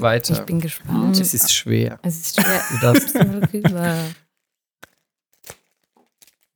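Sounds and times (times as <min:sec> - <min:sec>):
speech: 0:00.0 - 0:04.2
laughter: 0:02.4 - 0:04.2
floral-patterned wrapping paper crinkling and tearing as a gift is unwrapped: 0:04.3 - 0:06.5.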